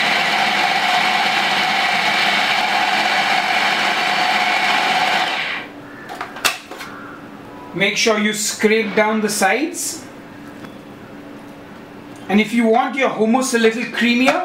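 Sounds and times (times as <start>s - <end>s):
blender blitzing chickpeas with cooking liquid and olive oil into hummus: 0.0s - 5.7s
speech: 7.8s - 10.1s, 12.3s - 14.4s.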